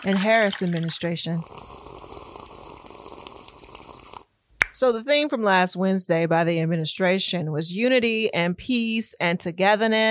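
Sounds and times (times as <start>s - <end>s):
speech: 0.0s - 1.9s, 4.8s - 10.0s
liquid pouring into a glass: 0.0s - 4.3s.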